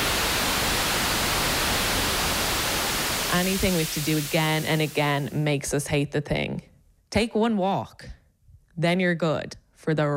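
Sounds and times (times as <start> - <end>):
white noise static: 0.0 - 5.8
speech: 3.3 - 8.2, 8.8 - 10.1.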